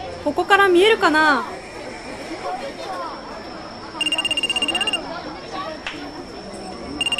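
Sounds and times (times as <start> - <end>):
outdoor crowd murmur at a fireworks event: 0.0 - 7.1
people chattering: 0.0 - 7.1
speech: 0.2 - 1.6
mobile phone ringing with pulsing electronic tone: 4.0 - 5.1, 7.0 - 7.1.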